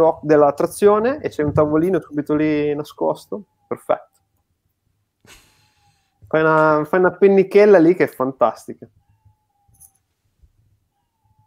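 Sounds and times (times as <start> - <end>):
speech: 0.0 - 4.1, 6.3 - 9.0
cat meowing insistently in drawn-out wavering cries: 3.2 - 4.2, 5.5 - 6.4, 8.9 - 10.0, 10.6 - 11.4.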